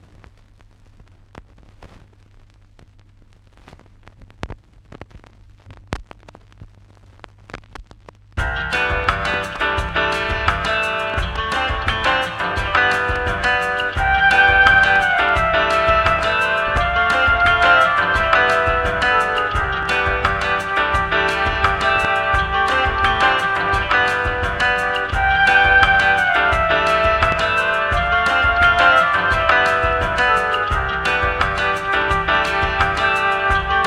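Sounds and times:
bossa music: 0:08.4 - 0:33.8.

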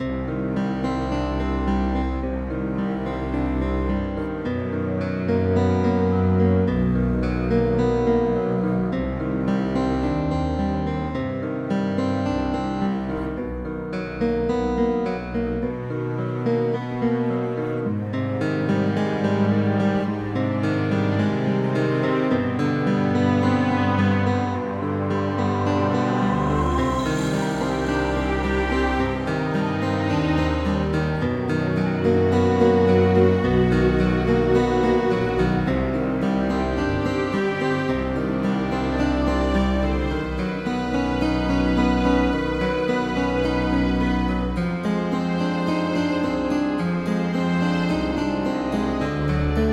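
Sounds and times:
forest game music: 0:00.0 - 0:49.7.

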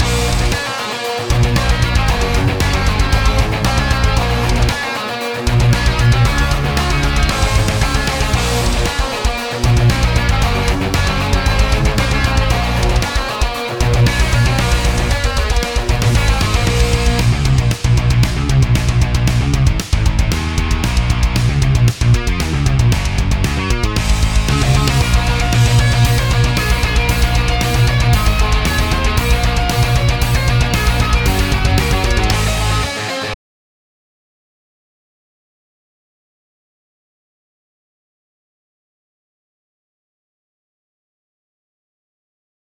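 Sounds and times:
boss battle metal music: 0:00.0 - 0:33.4.

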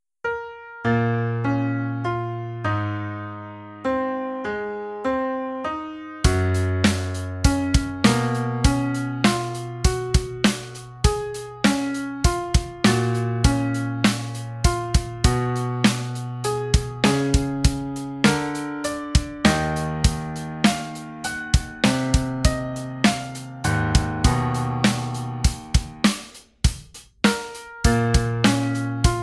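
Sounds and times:
sad piano: 0:00.3 - 0:26.1, 0:27.3 - 0:29.2
drums: 0:06.2 - 0:29.2.

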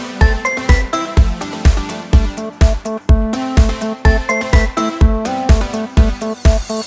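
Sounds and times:
fun little tune: 0:00.2 - 0:01.4, 0:02.9 - 0:06.6.

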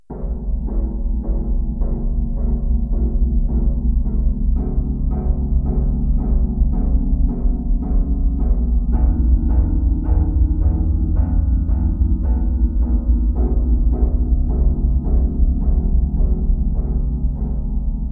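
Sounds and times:
creepy drums: 0:00.1 - 0:18.1.

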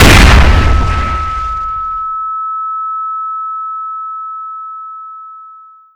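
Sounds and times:
flash bang grenade explosion: 0:00.0 - 0:02.1.

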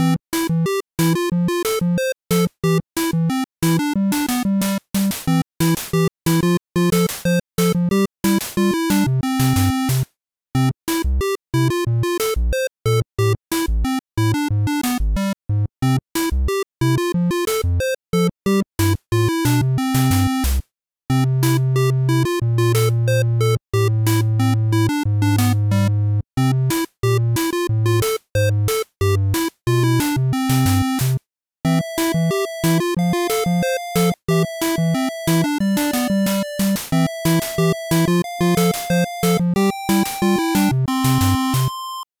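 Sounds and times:
silly chiptune song: 0:00.0 - 0:10.0, 0:10.6 - 0:42.1.

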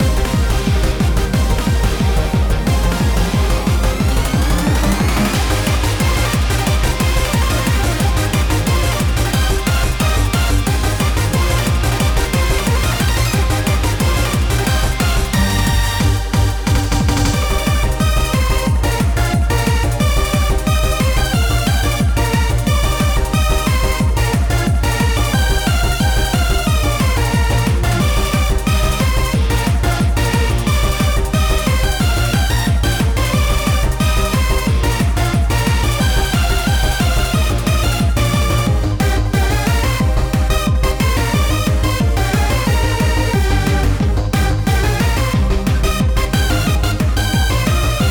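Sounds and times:
stadium climax music at 180 bpm: 0:00.0 - 0:48.0.

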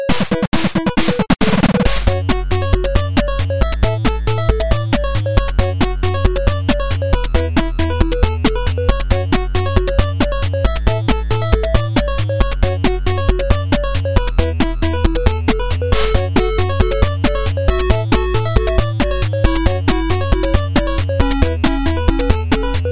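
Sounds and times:
techno loop: 0:00.2 - 0:22.9.

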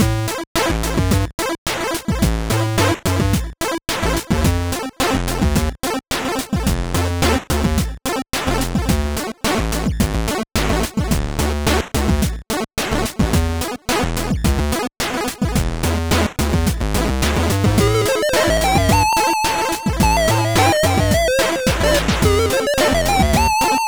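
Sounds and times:
funky experimental 8-bit music: 0:00.0 - 0:23.8.

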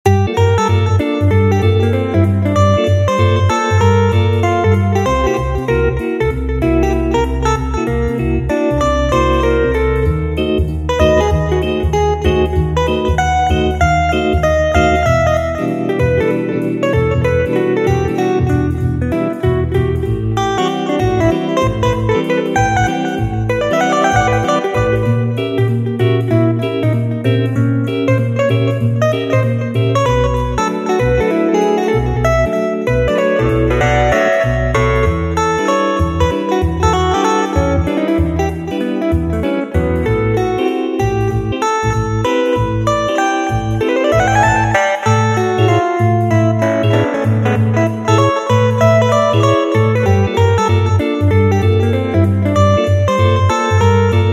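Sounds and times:
bebop guitar: 0:00.0 - 0:54.3.

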